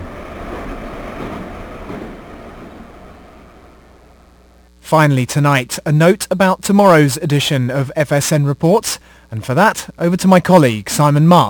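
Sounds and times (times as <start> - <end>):
Moscow Metro train rumbling through a tunnel in Moscow: 0.0 - 4.4
speech: 4.9 - 11.4.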